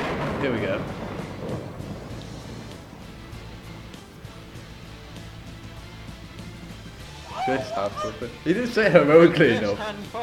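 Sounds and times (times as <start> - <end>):
hiss of stormy noise: 0.0 - 7.0
deep loud rolling thunder: 0.0 - 7.2
speech: 0.4 - 1.8, 7.5 - 10.2
laughter: 7.0 - 10.2.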